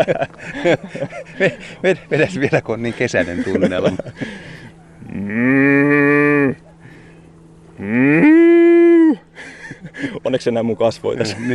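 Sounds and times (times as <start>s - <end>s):
speech: 0.0s - 4.6s, 5.2s - 6.0s, 10.3s - 11.5s
laughter: 0.0s - 4.8s, 9.1s - 10.3s, 11.2s - 11.5s
man imitating a cow mooing: 5.0s - 6.6s, 7.8s - 9.2s.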